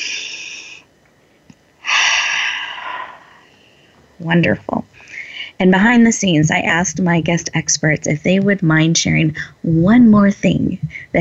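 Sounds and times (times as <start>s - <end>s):
deep breathing during a guided breathing exercise: 0.0s - 0.9s, 1.8s - 4.0s
speech: 4.2s - 4.9s, 5.6s - 11.1s.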